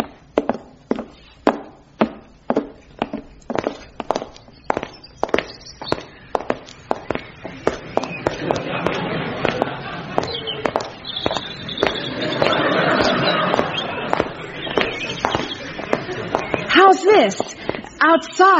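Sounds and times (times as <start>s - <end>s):
footsteps walking on a hard surface into a back alley: 0.0s - 18.1s
laughter: 7.5s - 17.9s
speech: 18.2s - 18.5s.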